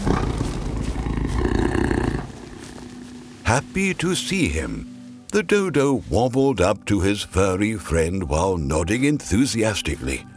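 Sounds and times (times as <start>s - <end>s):
tiger roaring: 0.0s - 4.8s
speech: 3.5s - 10.3s.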